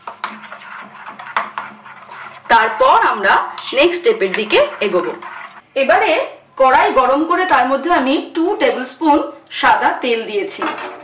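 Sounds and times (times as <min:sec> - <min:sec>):
utensil scraping and clinking against a bowl while stirring salt into food: 0:00.0 - 0:05.7
speech: 0:02.5 - 0:10.9.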